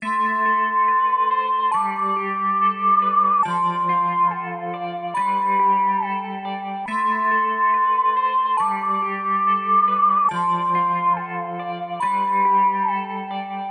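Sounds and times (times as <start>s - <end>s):
melody loop in A minor: 0.0s - 13.6s.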